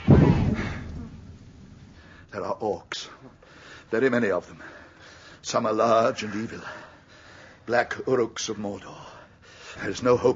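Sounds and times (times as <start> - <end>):
heavy door slamming shut: 0.0 - 1.1
speech: 2.4 - 4.8, 5.4 - 6.9, 7.7 - 9.1, 9.8 - 10.3.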